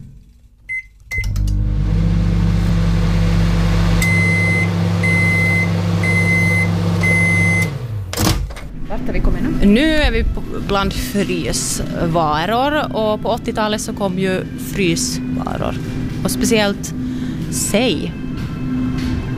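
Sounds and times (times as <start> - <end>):
microwave oven beeps: 0.7 - 1.8, 3.9 - 7.9
microwave oven running with a loud steady electric hum: 1.1 - 8.1, 14.5 - 19.3
speech: 9.7 - 18.2.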